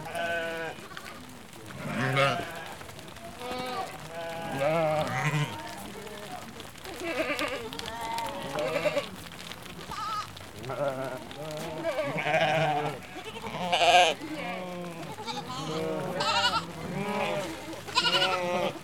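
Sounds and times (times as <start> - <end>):
flock of sheep bleating while passing by: 0.0 - 18.8.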